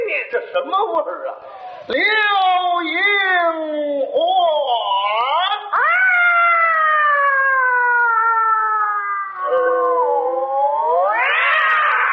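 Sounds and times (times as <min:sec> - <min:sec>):
speech: 0:00.5 - 0:04.2
voice imitating fighting cats with a yowl and screech: 0:03.9 - 0:12.1.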